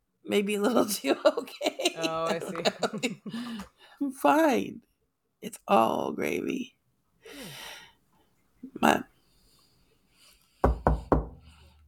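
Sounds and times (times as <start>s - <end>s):
speech: 0.3s - 7.6s, 8.7s - 9.1s
laughter: 0.7s - 3.7s
knocking on a wooden surface: 10.6s - 11.5s.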